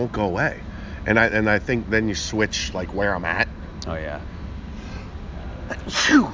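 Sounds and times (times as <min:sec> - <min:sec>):
speech: 0:00.0 - 0:04.4, 0:05.7 - 0:06.3
person with a cold sneezing: 0:05.7 - 0:06.3.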